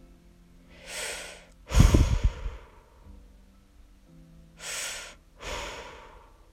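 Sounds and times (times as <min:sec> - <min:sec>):
heavy breathing inside astronaut helmet: 0:00.7 - 0:03.0, 0:04.6 - 0:06.5.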